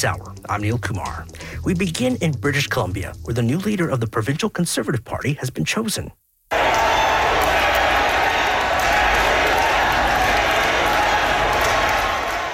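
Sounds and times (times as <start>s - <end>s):
speech: 0.0s - 6.2s
large indoor crowd cheering and shouting: 6.5s - 12.5s
people clapping: 6.5s - 12.5s.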